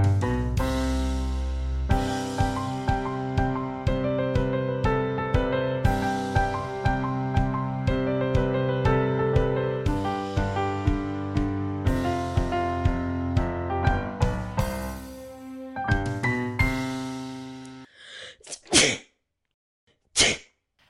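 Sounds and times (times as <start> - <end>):
rhythmic music intro: 0.0 - 17.9
loud sneeze: 18.0 - 19.1, 20.2 - 20.5.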